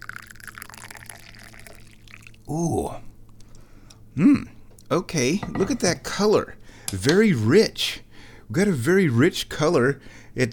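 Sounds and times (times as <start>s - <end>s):
tea pouring: 0.0s - 2.6s
speech: 2.5s - 3.1s, 4.2s - 10.5s.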